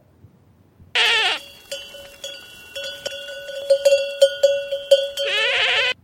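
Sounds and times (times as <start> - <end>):
goats bleating in the countryside: 1.0 - 3.0, 4.6 - 6.0
metallic bells clanking and ringing: 1.0 - 5.6.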